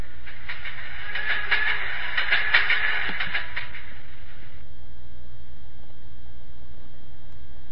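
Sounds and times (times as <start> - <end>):
train rolling along rails with clickety-clack: 0.0 - 4.6
low train rumble: 0.0 - 7.6.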